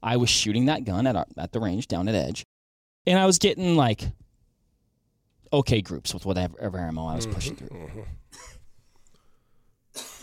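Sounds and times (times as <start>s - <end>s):
speech: 0.0s - 4.2s, 5.5s - 8.6s
person coughing: 7.2s - 8.7s, 10.0s - 10.2s.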